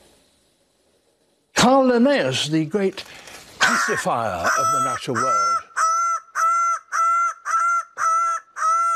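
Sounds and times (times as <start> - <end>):
speech: 1.6 - 3.3, 3.9 - 5.6
Greater bird of paradise Paradisaea apoda calling: 3.1 - 8.9.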